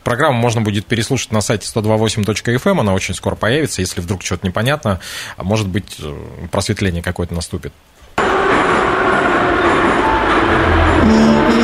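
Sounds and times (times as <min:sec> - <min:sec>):
speech: 0:00.1 - 0:08.0
metro train arriving at a terminal station: 0:08.2 - 0:11.6.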